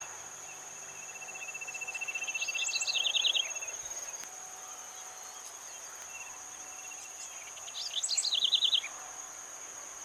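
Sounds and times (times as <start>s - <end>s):
Nothura maculosa calling: 1.2s - 8.9s.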